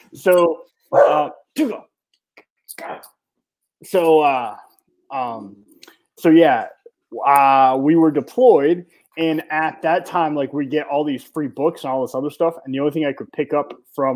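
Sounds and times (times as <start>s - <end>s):
speech: 0.1s - 1.9s, 2.8s - 3.2s, 3.8s - 14.1s
dog yelping in short sharp high-pitched cries: 0.9s - 1.3s.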